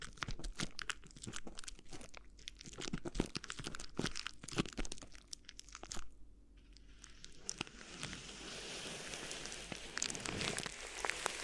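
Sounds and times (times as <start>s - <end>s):
crinkling and crunching of rustling material: 0.0s - 11.4s
rubbing hiss: 7.4s - 11.4s.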